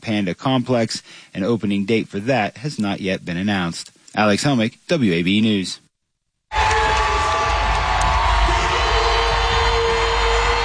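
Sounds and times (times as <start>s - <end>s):
speech: 0.0s - 5.8s
large hometown arena crowd cheering wildly after basketball win: 6.5s - 10.6s.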